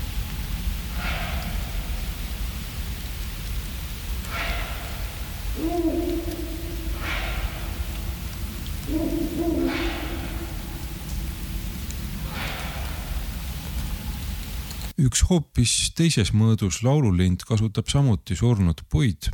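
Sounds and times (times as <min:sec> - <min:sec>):
constant rain-like hiss: 0:00.0 - 0:15.0
pair of Ural owls calling at night in a forest: 0:04.2 - 0:13.6
speech: 0:15.0 - 0:19.3.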